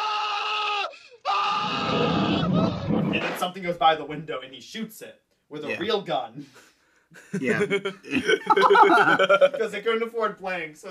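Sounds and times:
man screaming loudly: 0.0 - 2.9
speech: 2.9 - 10.8
laughter: 7.2 - 9.7.

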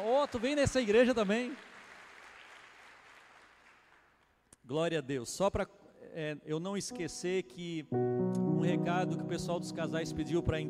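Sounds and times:
audience applauding: 0.0 - 4.1
speech: 0.1 - 1.7, 4.7 - 10.6.

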